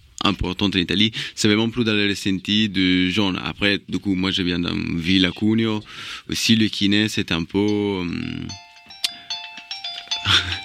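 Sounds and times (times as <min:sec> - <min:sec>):
speech: 0:00.2 - 0:08.6
music: 0:08.2 - 0:10.6
radio studio telephone ringing from listeners calling in: 0:08.2 - 0:10.6.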